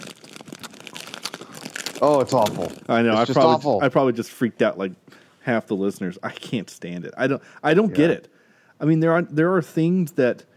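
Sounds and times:
bag of candy crinkling into a microphone: 0.0 - 3.3
speech: 2.0 - 10.5.

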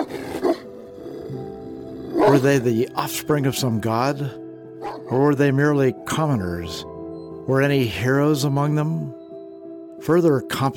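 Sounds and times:
large dog growling: 0.0 - 2.5
speech: 2.3 - 4.4, 5.1 - 6.9, 7.5 - 9.2, 10.0 - 10.7
large dog snarling bark: 4.8 - 5.2.

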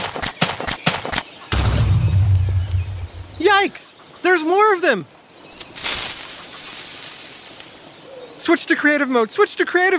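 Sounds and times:
creeper exploding in the Minecraft video game: 1.5 - 3.4
speech: 3.6 - 5.2, 8.5 - 9.9.

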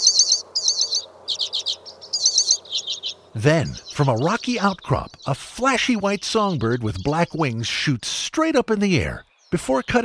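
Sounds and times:
hoary redpoll buzzy jingling trills in low bushes: 0.0 - 7.4
speech: 3.4 - 10.0.

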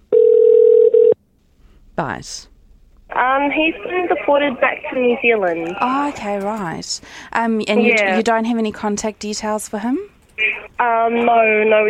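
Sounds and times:
telephone line ringing tone calling a home phone in Rarotonga Cook Islands: 0.1 - 1.2
speech: 2.0 - 2.5, 3.2 - 10.1, 10.8 - 11.8.

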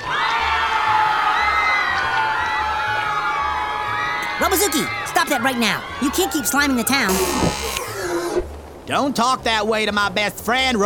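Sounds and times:
crowd screaming at high pitch: 0.0 - 8.4
speech: 4.4 - 7.8, 8.9 - 10.8.

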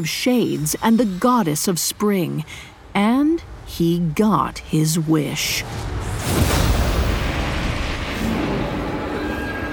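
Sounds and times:
speech: 0.0 - 6.6
loud booming explosion: 5.7 - 9.6.

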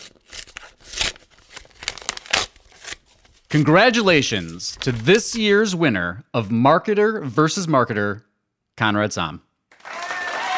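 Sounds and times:
large paper envelope being torn open: 0.0 - 5.5
speech: 3.5 - 9.4.

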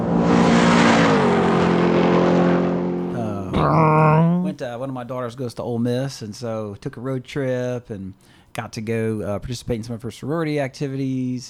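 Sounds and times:
car engine revving and accelerating through the gears: 0.0 - 3.8
speech: 4.6 - 11.4.

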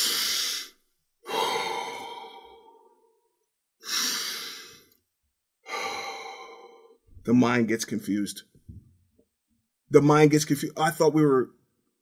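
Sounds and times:
slow deliberate controlled breathing: 0.0 - 5.0, 5.6 - 7.0
speech: 7.2 - 8.5, 9.9 - 11.6.

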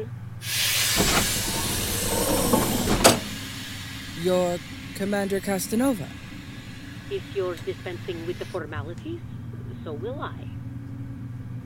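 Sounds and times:
heavy inner airlock doors of a spaceship hissing open: 0.0 - 8.8
low mechanical rumbling: 0.0 - 11.6
sharp burst of venting: 0.4 - 9.2
speech: 4.2 - 6.2, 7.1 - 10.5.

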